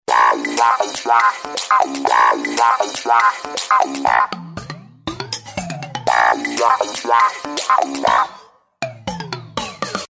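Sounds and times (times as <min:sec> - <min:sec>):
wah-wah phone tones from an LG GB190 phone: 0:00.1 - 0:04.3, 0:06.1 - 0:08.3.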